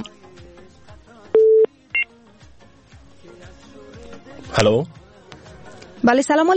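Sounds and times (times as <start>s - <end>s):
electronic telephone tones as a call connects to a radio call-in line: 1.4s - 2.1s
speech: 4.6s - 5.0s, 6.0s - 6.5s.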